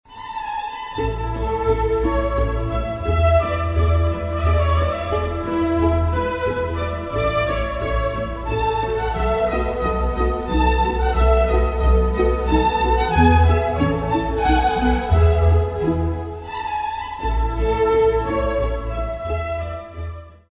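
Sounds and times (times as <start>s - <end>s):
classical minuet in E flat: 0.1s - 20.5s.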